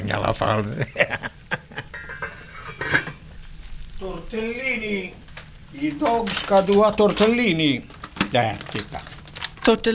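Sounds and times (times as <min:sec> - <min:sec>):
speech: 0:00.1 - 0:01.3, 0:04.3 - 0:09.0, 0:09.6 - 0:09.9
laughter: 0:00.7 - 0:02.0
pots and pans clattering while cooking: 0:01.5 - 0:03.6, 0:05.3 - 0:09.7.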